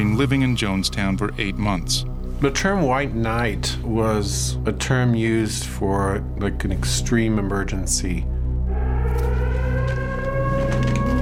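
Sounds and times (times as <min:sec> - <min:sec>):
speech: 0:00.0 - 0:08.3
civil defense siren wailing: 0:08.5 - 0:11.2.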